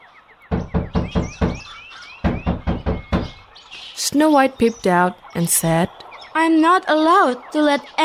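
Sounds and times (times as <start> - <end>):
faint high chirping: 0.0 - 8.0
woman knocking on the wooden door of a house: 0.5 - 3.4
speech: 4.1 - 8.0.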